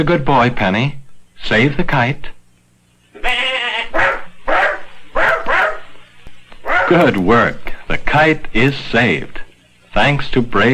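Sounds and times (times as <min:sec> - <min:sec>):
speech: 0:00.0 - 0:02.4, 0:03.2 - 0:04.0, 0:06.9 - 0:09.4, 0:10.0 - 0:10.7
old billy goat bleating: 0:03.1 - 0:04.3
dog barking at a billy goat: 0:03.9 - 0:06.0, 0:06.6 - 0:07.1.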